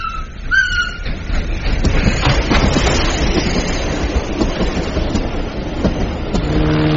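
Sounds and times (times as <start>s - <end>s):
train rumbling on rails: 0.0s - 6.9s.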